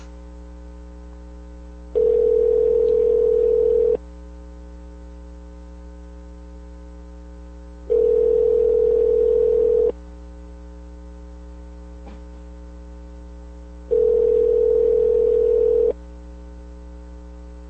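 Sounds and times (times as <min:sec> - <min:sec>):
steady low electrical hum: 0:00.0 - 0:17.6
phone ringback tone on a call to a cell phone: 0:02.0 - 0:04.0, 0:07.9 - 0:09.9, 0:13.9 - 0:16.0.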